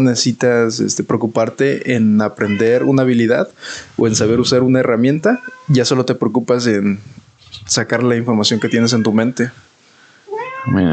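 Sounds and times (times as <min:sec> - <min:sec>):
speech: 0:00.0 - 0:09.7, 0:10.6 - 0:10.9
cat meowing into a drawn-out wail: 0:02.4 - 0:03.2, 0:04.2 - 0:05.8, 0:08.3 - 0:09.4, 0:10.3 - 0:10.9.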